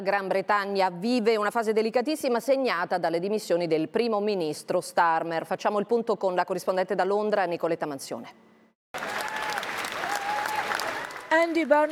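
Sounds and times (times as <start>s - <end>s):
speech: 0.0s - 9.1s, 11.3s - 11.9s
applause from Labour members of parliament: 8.9s - 11.9s.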